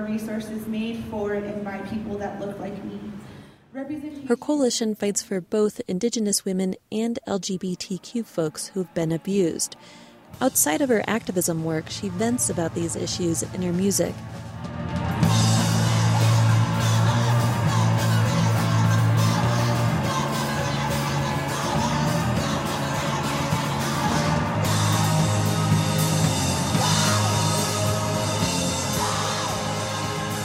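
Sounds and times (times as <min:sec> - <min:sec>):
speech: 0:00.1 - 0:15.0
loud live band playing heavy distorted music: 0:12.3 - 0:30.4.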